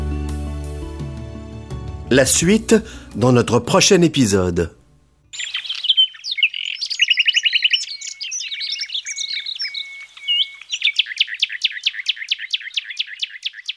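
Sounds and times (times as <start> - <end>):
speech: 2.1 - 4.8
nightingale singing: 5.3 - 13.7.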